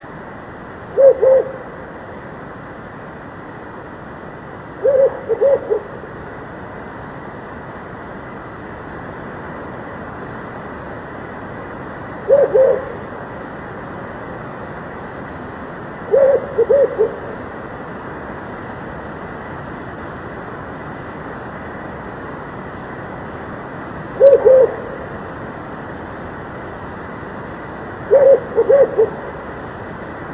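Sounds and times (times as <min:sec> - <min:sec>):
owl singing: 0:00.9 - 0:01.7, 0:04.8 - 0:06.0, 0:12.3 - 0:13.0, 0:16.1 - 0:17.4, 0:24.2 - 0:25.0, 0:28.1 - 0:29.3.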